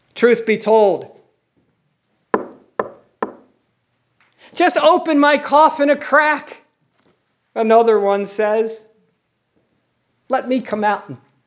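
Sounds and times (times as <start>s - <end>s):
speech: 0.2s - 1.1s, 4.6s - 6.6s, 7.6s - 8.9s, 10.3s - 11.3s
knocking on a door: 2.4s - 3.5s.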